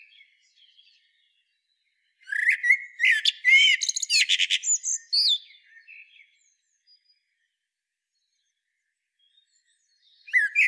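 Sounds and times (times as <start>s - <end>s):
Common blackbird singing, Turdus merula: 2.3s - 5.4s, 10.3s - 10.6s.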